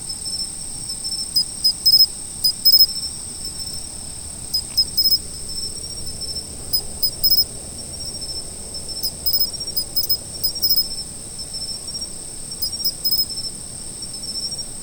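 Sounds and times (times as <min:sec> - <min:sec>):
soft low background noise: 0:00.0 - 0:14.8
steady high autumn insect trilling: 0:00.2 - 0:13.5.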